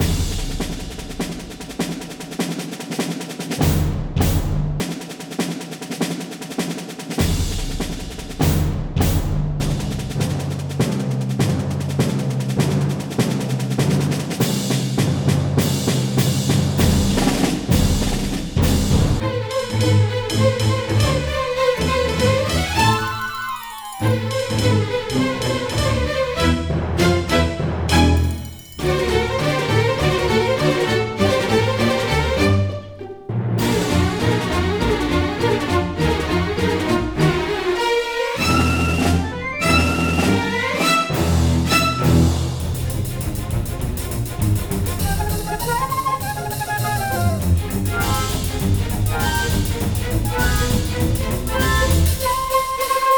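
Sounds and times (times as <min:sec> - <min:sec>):
percussion: 0:00.0 - 0:32.6, 0:33.6 - 0:53.1
strings: 0:18.0 - 0:53.1.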